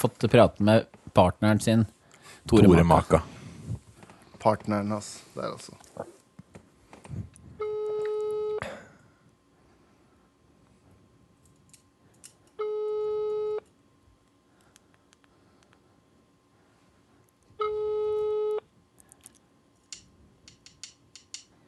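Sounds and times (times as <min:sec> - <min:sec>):
speech: 0:00.0 - 0:03.3, 0:04.4 - 0:06.2
telephone ringing tone on an unanswered call: 0:07.6 - 0:08.6, 0:12.6 - 0:13.6, 0:17.6 - 0:18.6
faint clicks and scattered ticks: 0:19.0 - 0:21.5.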